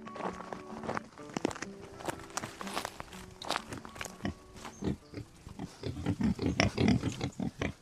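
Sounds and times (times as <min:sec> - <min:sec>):
shuffling steps: 0:00.0 - 0:04.9
Irish wild boar grunting on a farm on the Kilkenny-Waterford border: 0:04.2 - 0:07.8.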